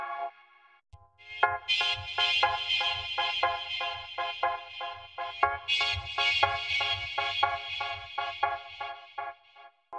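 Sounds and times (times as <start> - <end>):
chords played as a sound example: 1.4 - 9.0.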